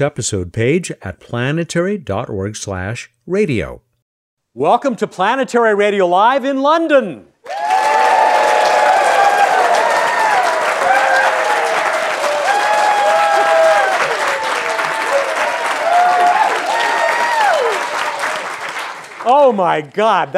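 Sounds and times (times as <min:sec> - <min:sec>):
speech: 0:00.0 - 0:03.9, 0:04.6 - 0:07.6, 0:19.5 - 0:20.3
audience whoops and shouts: 0:07.4 - 0:18.2
large audience applauding in a lecture theatre: 0:07.4 - 0:19.6.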